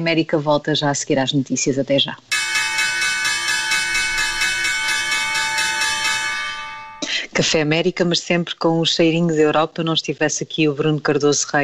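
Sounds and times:
speech: 0.0s - 2.3s, 7.4s - 11.6s
bright bell ringing with rapid pulsing strikes: 2.3s - 7.1s.

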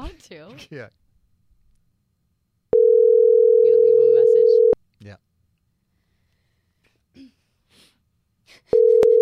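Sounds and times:
speech: 0.2s - 1.0s, 5.0s - 5.3s, 7.2s - 7.9s
phone line ringback tone: 2.7s - 4.8s, 8.8s - 9.2s.

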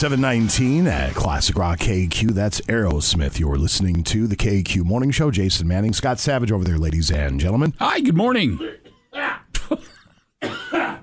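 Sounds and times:
speech: 0.0s - 9.4s
coughing and throat clearing from dry throat: 8.6s - 11.0s.

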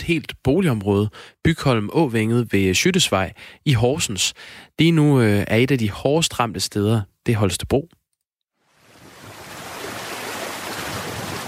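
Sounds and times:
speech: 0.0s - 8.0s
floodwater from heavy rain rushing through an overflowing river in a town: 8.8s - 11.4s.

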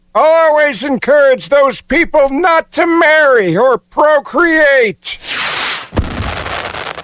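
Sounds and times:
speech: 0.2s - 5.4s
4th of July firework rushing hiss: 5.2s - 7.0s
firework crackle and rumble: 6.0s - 7.0s.

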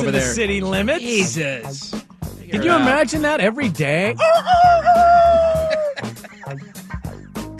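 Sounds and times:
speech: 0.0s - 5.2s
person imitating a rooster crow: 4.2s - 6.0s
laughter: 4.2s - 7.5s.

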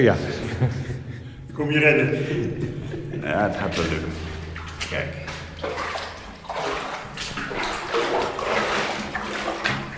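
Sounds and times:
speech: 0.0s - 0.9s, 1.6s - 4.2s, 4.8s - 5.9s
laughter: 0.3s - 1.3s, 1.9s - 4.3s
clear drinking water splashing as someone wades through a tunnel: 3.6s - 9.9s.

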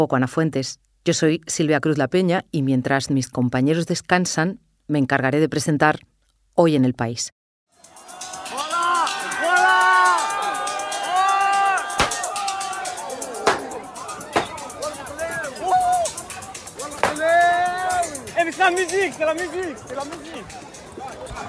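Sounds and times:
speech: 0.0s - 7.4s, 18.7s - 20.6s
crowd screaming and yelling in panic in a nightclub: 7.8s - 18.3s
gunshots in a nightclub: 12.0s - 12.3s.

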